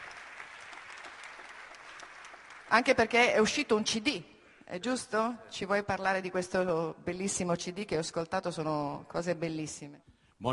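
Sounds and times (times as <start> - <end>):
audience applause at a public gathering: 0.0 - 3.0
speech: 2.7 - 10.5.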